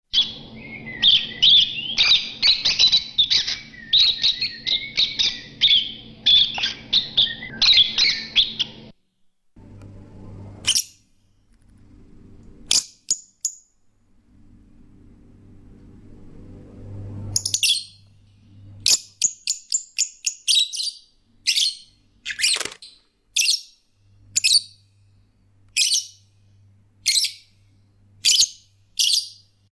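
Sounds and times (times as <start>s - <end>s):
lovebird calling: 0.2s - 8.9s, 17.4s - 18.1s, 18.8s - 24.8s, 25.8s - 26.2s, 27.0s - 27.5s, 28.2s - 29.5s.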